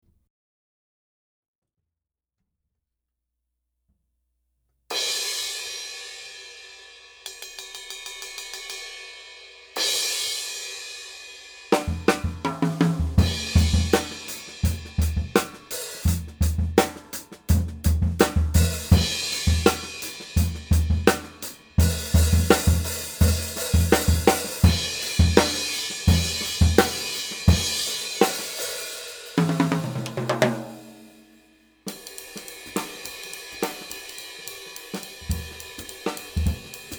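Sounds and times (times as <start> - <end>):
16 Sabian cymbal: 4.9 - 12.3, 13.1 - 36.9.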